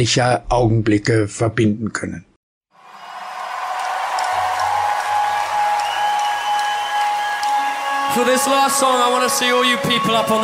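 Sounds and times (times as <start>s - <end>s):
speech: 0.0s - 2.3s, 8.2s - 10.4s
crowd applauding at an outdoor concert in a park: 2.7s - 10.4s.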